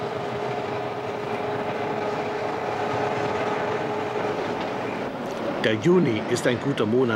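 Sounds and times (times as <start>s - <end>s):
train pulled uphill by two electric railcars rumbling along the rails: 0.0s - 7.1s
speech: 5.6s - 7.1s.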